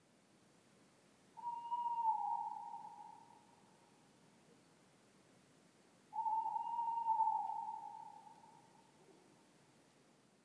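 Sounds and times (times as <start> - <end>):
male tawny owl calling: 1.4 - 3.5, 6.1 - 9.2.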